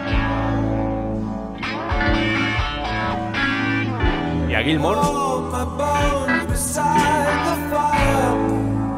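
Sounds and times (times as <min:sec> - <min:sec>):
electric guitar with effected, slightly distorted tones: 0:00.0 - 0:08.9
warm Wurlitzer electric piano playing sustained chords: 0:00.0 - 0:08.9
speech: 0:04.6 - 0:06.0.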